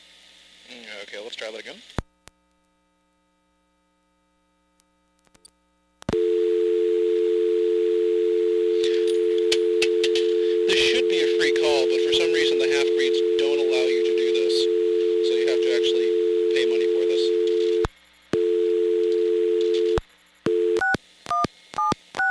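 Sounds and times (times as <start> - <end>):
speech: 0.7 - 2.0
pay-phone dial tone: 6.1 - 20.9.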